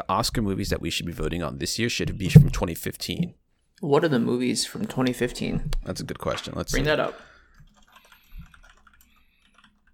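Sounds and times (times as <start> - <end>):
speech: 0.1 - 7.3
heavier thump: 2.3 - 2.6
mechanical keyboard typing: 7.7 - 9.9.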